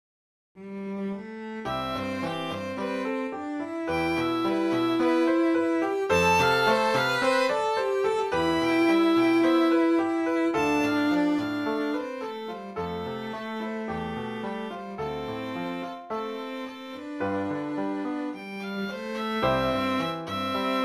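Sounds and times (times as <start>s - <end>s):
cello in a piano trio: 0.6s - 20.8s.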